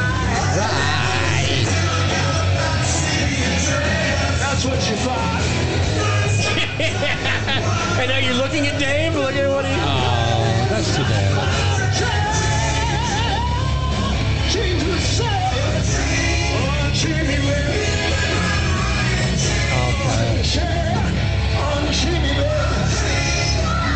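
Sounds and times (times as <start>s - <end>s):
dense noisy background: 0.0s - 23.9s
man screaming and yelling loudly: 0.5s - 1.7s
laughter: 6.2s - 12.3s.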